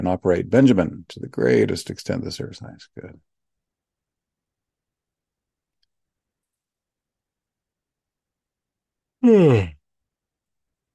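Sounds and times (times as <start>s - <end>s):
speech: 0.0s - 3.3s, 9.2s - 9.8s
person yawning: 9.2s - 9.8s.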